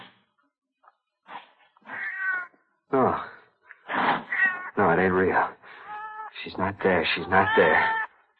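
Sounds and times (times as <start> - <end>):
cat meowing and caterwauling: 1.9 - 2.6, 4.3 - 4.8, 5.8 - 6.3, 7.0 - 8.1
speech: 5.0 - 5.6, 6.4 - 8.0.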